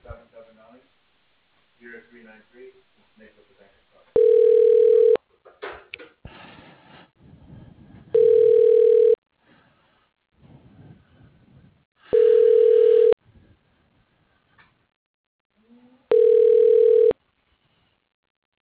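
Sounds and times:
telephone line ringing during call transfer: 4.2s - 5.2s, 8.2s - 9.2s, 12.2s - 13.2s, 16.1s - 17.2s.

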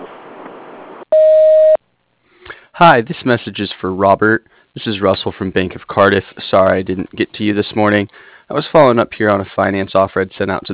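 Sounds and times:
steady electronic beep: 1.1s - 1.8s
speech: 2.8s - 10.7s.

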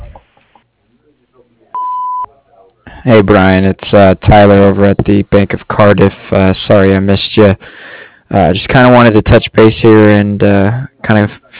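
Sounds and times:
recorded voice greeting on a business answering machine: 1.0s - 11.5s
answering machine beep: 1.8s - 2.3s
speech: 3.0s - 11.4s.

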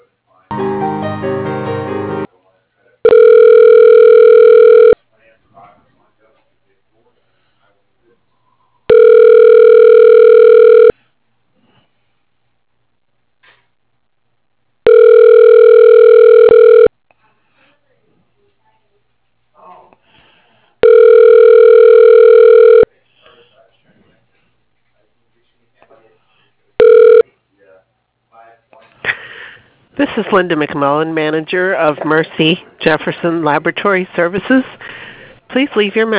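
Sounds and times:
ringback tone of a telephone call being transferred: 3.1s - 5.0s, 8.9s - 10.9s, 14.8s - 16.9s, 20.8s - 22.9s, 26.8s - 27.2s
speech: 30.2s - 34.8s, 35.6s - 36.1s.

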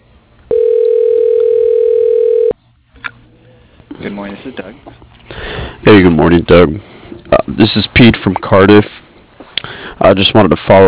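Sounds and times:
telephone tone while dialing an office extension: 0.5s - 2.6s
speech: 4.2s - 9.0s, 10.0s - 10.8s.

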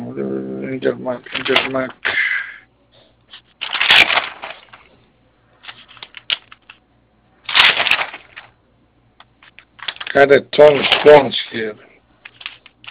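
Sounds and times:
speech: 0.7s - 2.1s, 10.1s - 11.9s
old papers being handled and shuffled: 1.2s - 2.0s, 3.3s - 6.8s, 7.4s - 8.6s, 9.2s - 12.9s.

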